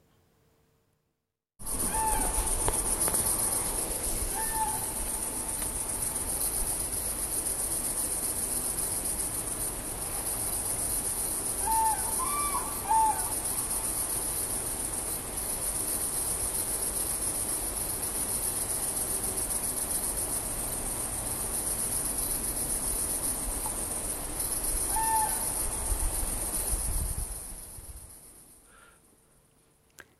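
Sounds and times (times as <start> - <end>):
wart-biter bush cricket chirping: 1.6 - 30.1
faint crane calls: 1.7 - 3.3, 4.1 - 5.6, 11.6 - 13.5, 24.8 - 25.7.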